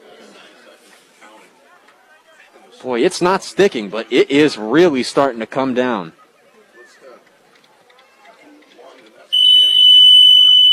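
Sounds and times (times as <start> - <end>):
crowd noise: 0.0 - 10.7
speech: 2.8 - 6.2
electronic buzzer marking end of football quarter: 9.4 - 10.7.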